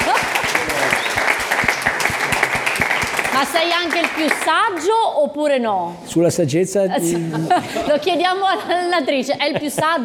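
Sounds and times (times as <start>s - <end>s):
laughter: 0.0s - 1.1s, 7.0s - 10.0s
crowd applauding: 0.0s - 4.9s
speech: 3.4s - 10.0s.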